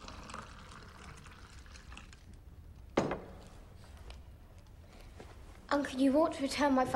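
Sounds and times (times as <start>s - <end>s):
brown liquid pouring into an extra large glass: 0.0s - 2.5s
speech: 5.7s - 6.9s.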